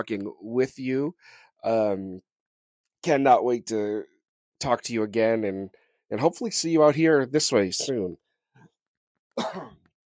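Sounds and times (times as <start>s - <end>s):
speech: 0.0s - 2.3s, 3.0s - 8.2s, 9.4s - 9.8s
person coughing: 9.4s - 9.8s.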